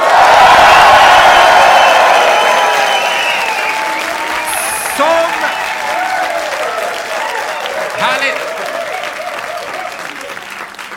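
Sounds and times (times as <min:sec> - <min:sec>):
live audience of about 350 people applauding and cheering in a Stockholm hotel venue: 0:00.0 - 0:10.9.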